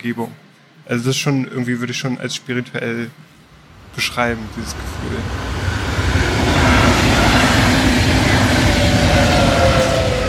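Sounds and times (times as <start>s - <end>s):
speech: 0.0s - 3.3s, 4.0s - 5.6s
train rumbling past with low mechanical rattling: 3.5s - 10.2s.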